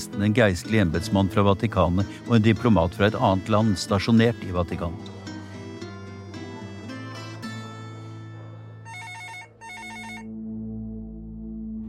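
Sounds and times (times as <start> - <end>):
speech: 0.0 - 5.2
sustained musical tones: 0.6 - 11.8
telephone ringing in trilling bursts: 8.9 - 10.3.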